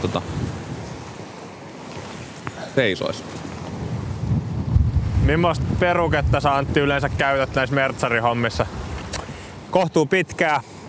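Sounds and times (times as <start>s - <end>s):
speech: 0.0s - 0.6s, 2.8s - 3.5s, 5.3s - 8.8s, 9.7s - 10.7s
gusty wind rumble on the microphone: 0.0s - 1.2s, 3.4s - 9.4s
choppy sea water around a small boat rocking on the waves: 0.0s - 10.8s.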